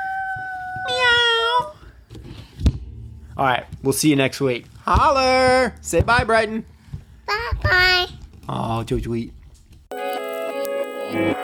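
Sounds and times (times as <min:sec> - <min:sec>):
child imitating a kitten's meow: 0:00.0 - 0:01.8
short thump: 0:02.1 - 0:09.5
speech: 0:03.4 - 0:06.7, 0:08.7 - 0:09.4, 0:11.1 - 0:11.3.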